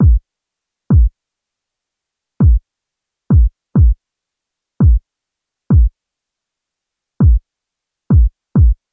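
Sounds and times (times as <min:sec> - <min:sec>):
drums: 0:00.0 - 0:00.2, 0:00.9 - 0:01.2, 0:02.4 - 0:02.6, 0:03.3 - 0:04.0, 0:04.8 - 0:05.0, 0:05.7 - 0:05.9, 0:07.2 - 0:07.4, 0:08.1 - 0:08.8.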